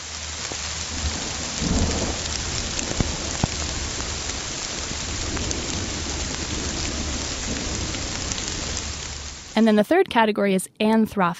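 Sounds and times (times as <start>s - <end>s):
heavy rainstorm pouring: 0.0s - 9.6s
sharper drips and pops: 0.4s - 9.2s
speech: 9.6s - 11.3s.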